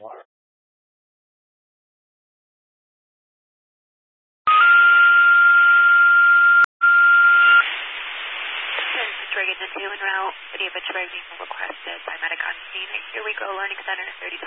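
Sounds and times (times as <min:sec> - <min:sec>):
loud steady high-pitched alarm tone: 0:04.5 - 0:07.6
radio static: 0:07.3 - 0:14.4
speech: 0:09.4 - 0:14.4.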